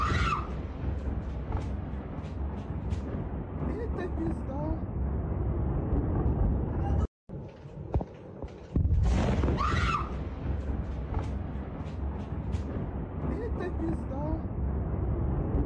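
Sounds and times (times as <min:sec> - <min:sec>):
little kids screaming in the background: 0:00.0 - 0:00.6, 0:09.4 - 0:10.2
steady low rumble of outdoor noise: 0:00.0 - 0:15.6.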